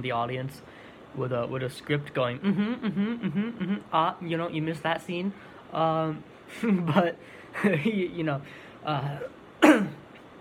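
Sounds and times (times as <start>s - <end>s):
speech: 0.0s - 9.9s
raspy cough from a person with a sore scratchy throat: 9.2s - 10.0s.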